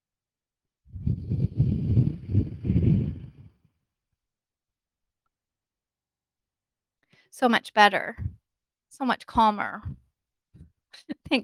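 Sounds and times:
slow deep breath in and out: 0.9s - 3.6s
speech: 7.4s - 8.4s, 9.0s - 10.0s, 11.0s - 11.4s.

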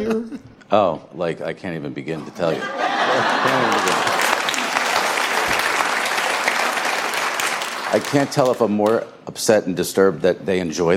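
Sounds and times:
speech: 0.0s - 4.2s, 7.9s - 10.9s
laughter: 2.2s - 5.1s
studio audience applauding: 2.9s - 9.0s.

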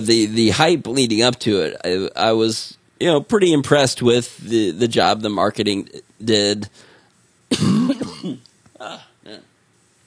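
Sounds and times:
speech: 0.0s - 6.9s
person coughing with a rough throaty edge: 7.5s - 9.5s.

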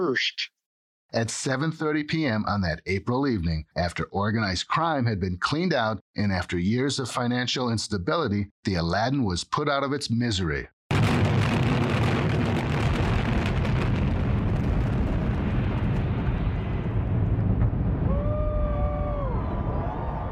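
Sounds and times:
speech: 0.0s - 10.8s
rapid crackling demolition blasts: 10.9s - 18.8s
17-story hotel tower demolition implosion collapsing: 10.9s - 20.3s.

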